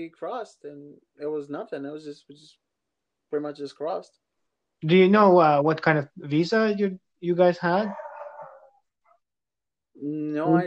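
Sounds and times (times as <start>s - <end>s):
speech: 0.0s - 2.6s, 3.3s - 4.2s, 4.8s - 8.0s, 10.0s - 10.6s
dog barking: 7.9s - 8.8s.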